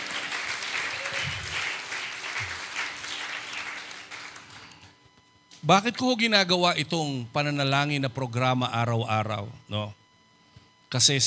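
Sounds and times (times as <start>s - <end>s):
crowd applauding at a daily prayer gathering: 0.0s - 5.0s
speech: 5.6s - 10.0s, 10.9s - 11.2s.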